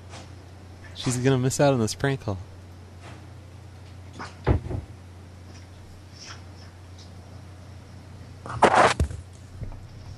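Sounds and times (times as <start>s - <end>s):
steady low hum: 0.0s - 10.1s
speech: 1.0s - 2.5s
bedroom door thump: 4.4s - 4.9s.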